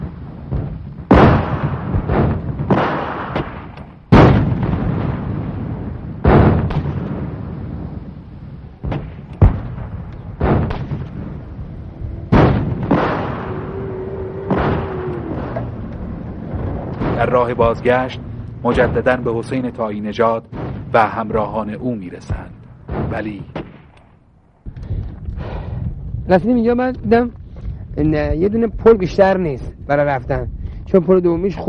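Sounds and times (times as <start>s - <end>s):
heavy gunfire in a palm grove during war: 0.0s - 8.2s, 8.8s - 25.8s
explosions in a palm grove during war: 0.0s - 31.6s
constant low rumble: 3.5s - 31.6s
speech: 17.3s - 23.6s, 26.3s - 27.4s, 28.0s - 31.6s.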